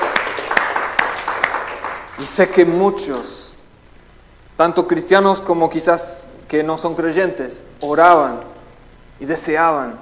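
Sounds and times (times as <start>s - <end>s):
audience clapping: 0.0s - 3.4s
speech: 2.2s - 3.5s, 4.6s - 8.5s, 9.2s - 10.0s.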